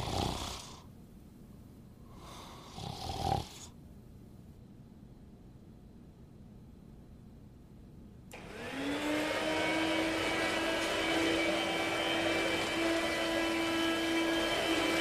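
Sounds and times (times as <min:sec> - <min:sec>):
grandmother snoring while asleep: 0:00.0 - 0:00.9, 0:02.1 - 0:03.8
vacuum cleaner running on a carpet: 0:08.3 - 0:14.9.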